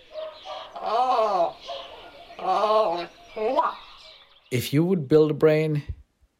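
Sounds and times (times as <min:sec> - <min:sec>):
raven croaking: 0:00.0 - 0:04.6
speech: 0:04.5 - 0:06.0.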